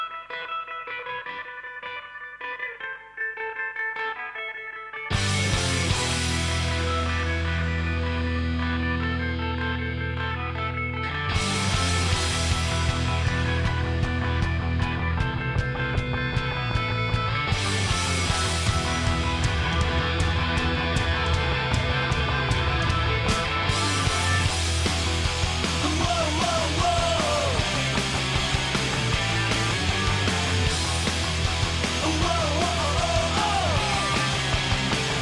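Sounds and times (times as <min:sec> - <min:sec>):
hard rock song: 0:00.0 - 0:35.2
thick distorted guitars: 0:00.0 - 0:35.2
pounding drums: 0:11.8 - 0:35.2.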